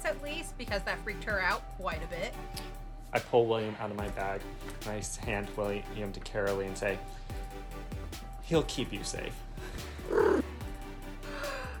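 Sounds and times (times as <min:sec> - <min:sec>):
speech: 0:00.1 - 0:10.4
cat purring: 0:10.0 - 0:10.5
cat meowing: 0:10.1 - 0:10.4.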